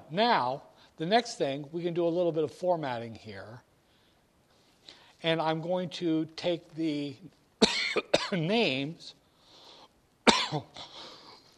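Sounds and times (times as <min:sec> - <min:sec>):
speech: 0:00.1 - 0:03.7, 0:05.2 - 0:07.4, 0:08.0 - 0:09.2, 0:10.5 - 0:11.0
person coughing: 0:07.6 - 0:08.4, 0:10.3 - 0:11.5.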